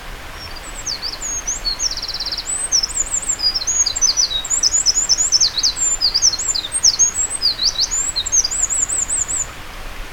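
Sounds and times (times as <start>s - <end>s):
wren calling: 0.4s - 9.5s.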